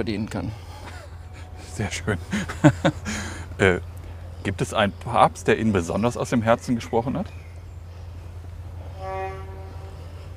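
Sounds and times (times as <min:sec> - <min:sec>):
speech: 0:00.0 - 0:00.7, 0:01.8 - 0:07.4
constant low engine-like rumble of passing ships: 0:00.0 - 0:10.3
laughter: 0:00.8 - 0:03.8
ship horn tooting on a canal: 0:08.7 - 0:10.3.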